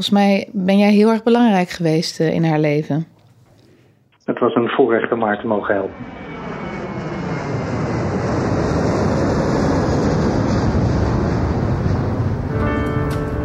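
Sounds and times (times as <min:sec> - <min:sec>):
speech: 0:00.0 - 0:03.2, 0:04.3 - 0:06.2
airplane engines roaring just after takeoff: 0:04.5 - 0:13.4.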